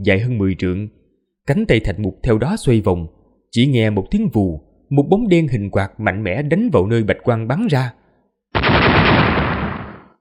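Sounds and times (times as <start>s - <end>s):
speech: 0.0s - 9.4s
loud dense explosion: 8.6s - 10.2s.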